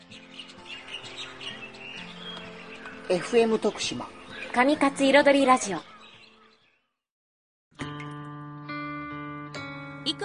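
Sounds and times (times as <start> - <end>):
birds chirping: 0.0 - 7.1
speech: 3.1 - 5.9.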